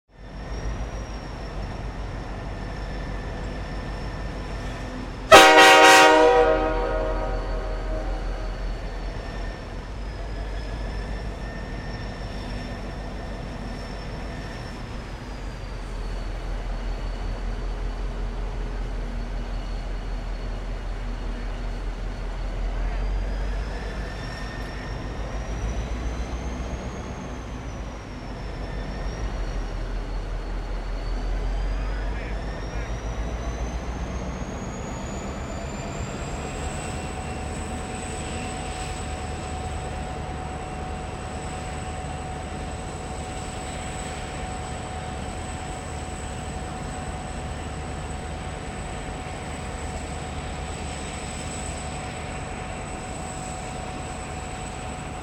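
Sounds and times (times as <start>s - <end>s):
train idling outside: 0.2s - 55.2s
train horn blowing: 5.3s - 8.7s.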